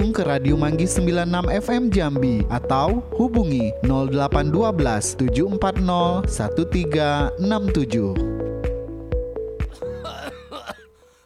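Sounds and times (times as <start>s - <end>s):
speech: 0.2s - 8.3s
person with flu coughing: 9.7s - 11.2s.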